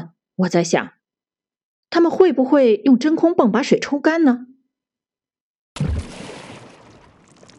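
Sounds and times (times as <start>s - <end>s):
speech: 0.4s - 1.0s, 1.9s - 4.5s
heavy splash of jumping into a river: 5.8s - 7.5s.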